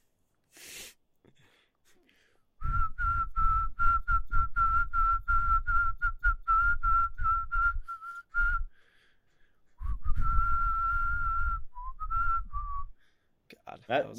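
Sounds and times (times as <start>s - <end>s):
person whistling a lively tune: 2.6s - 8.8s, 9.8s - 13.0s.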